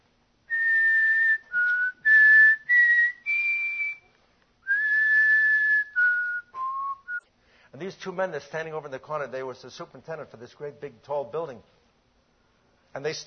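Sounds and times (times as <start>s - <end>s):
person whistling a simple tune alone: 0.5s - 7.2s
speech: 7.8s - 11.8s, 13.0s - 13.2s.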